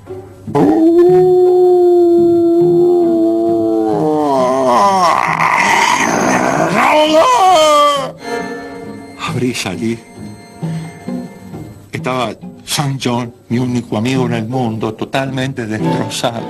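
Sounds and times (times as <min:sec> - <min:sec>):
speech: 0:00.1 - 0:01.4, 0:09.6 - 0:10.4, 0:12.2 - 0:16.4
hound howling at night in a courtyard: 0:00.6 - 0:08.2.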